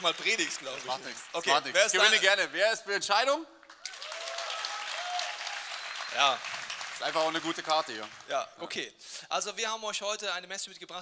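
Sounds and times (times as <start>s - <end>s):
audience applause: 0.0s - 2.2s, 3.7s - 8.4s
speech: 0.0s - 3.6s, 6.1s - 11.0s.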